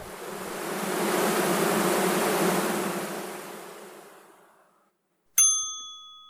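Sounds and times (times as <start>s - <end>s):
thousands of honeybees buzzing: 0.0s - 4.7s
bright bell-like ding: 5.4s - 6.2s.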